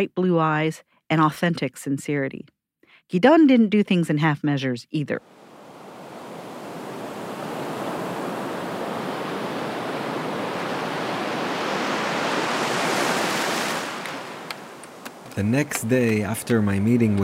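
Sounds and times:
speech: 0.0 - 5.4, 15.4 - 17.2
sea waves breaking on an empty seashore: 5.2 - 15.9.

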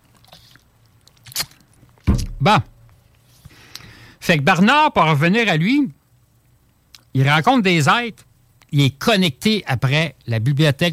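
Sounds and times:
person sipping a drink: 0.0 - 2.0
speech: 2.4 - 2.7, 4.3 - 6.0, 7.1 - 10.9.

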